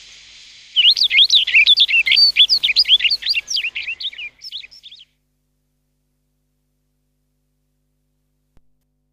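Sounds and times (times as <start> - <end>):
rustic bunting singing: 0.7 - 5.2.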